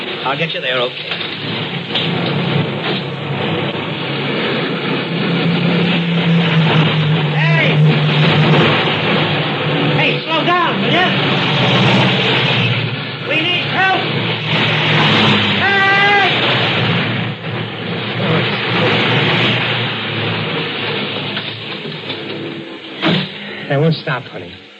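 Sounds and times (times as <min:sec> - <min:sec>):
speech: 0:00.2 - 0:02.6, 0:23.7 - 0:24.7
cars speeding past on a four-lane highway: 0:01.0 - 0:23.9
voices: 0:06.2 - 0:09.2, 0:09.8 - 0:11.4, 0:13.2 - 0:17.1, 0:17.9 - 0:19.7, 0:23.0 - 0:24.7.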